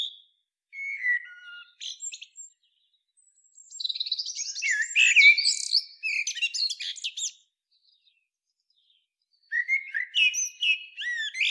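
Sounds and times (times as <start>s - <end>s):
Eurasian blackbird Turdus merula whistling and twittering: 0.8s - 7.4s, 9.4s - 11.5s.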